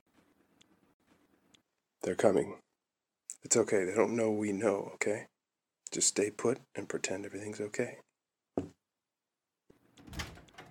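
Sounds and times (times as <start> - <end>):
speech: 2.0 - 2.7, 3.4 - 5.3, 5.9 - 8.7
door swinging open with soft scraping: 10.0 - 10.7.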